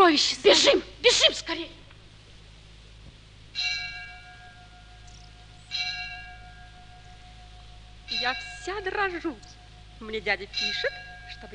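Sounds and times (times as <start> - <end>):
quiet steady hum: 0.0 - 11.5
speech: 0.1 - 1.8, 8.2 - 11.5
church bell strikes: 3.6 - 11.5.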